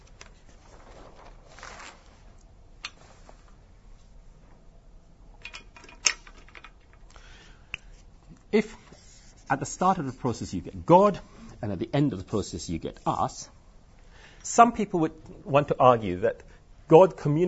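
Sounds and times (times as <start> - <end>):
sharper paper crinkles: 0.0 - 2.5
paper rustling as sheets are handled and pulled apart: 0.0 - 3.6
speech: 8.6 - 8.8, 9.5 - 13.6, 14.4 - 17.4.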